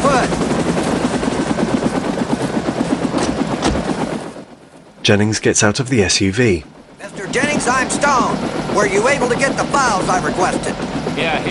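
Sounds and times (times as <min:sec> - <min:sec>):
helicopter rotor blades thumping while descending to land: 0:00.0 - 0:11.4
speech: 0:05.0 - 0:11.4.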